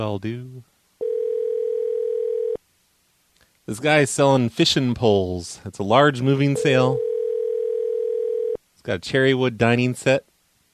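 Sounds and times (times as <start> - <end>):
speech: 0.0 - 0.7, 3.7 - 7.1, 8.8 - 10.3
steady telephone dial tone: 1.0 - 2.6, 6.6 - 8.6.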